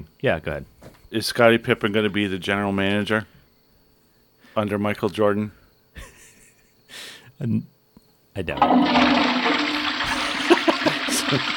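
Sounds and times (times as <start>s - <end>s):
speech: 0.2s - 3.4s, 4.6s - 6.1s, 7.4s - 7.7s, 8.4s - 9.4s, 11.3s - 11.5s
laughter: 6.0s - 6.8s, 10.0s - 11.5s
toilet flushing with bowl draining: 8.6s - 11.5s.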